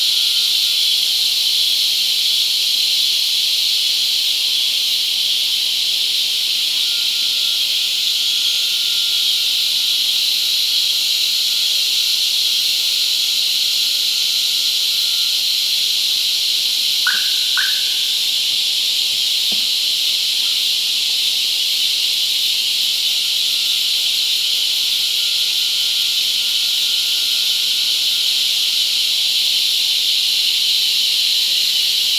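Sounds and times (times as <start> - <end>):
cicadas shrilling: 0.0 - 32.1
quick chirps: 17.1 - 18.1.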